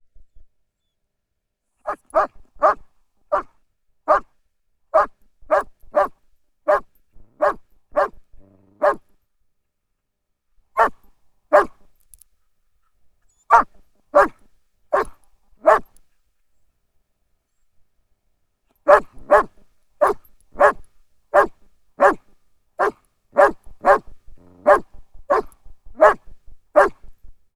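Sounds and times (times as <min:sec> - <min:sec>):
German Shepherd dog barking in a field: 0:01.9 - 0:03.5, 0:04.1 - 0:04.3, 0:05.0 - 0:08.2, 0:08.8 - 0:09.0, 0:10.8 - 0:11.8, 0:13.5 - 0:15.9, 0:18.9 - 0:22.2, 0:22.8 - 0:27.1.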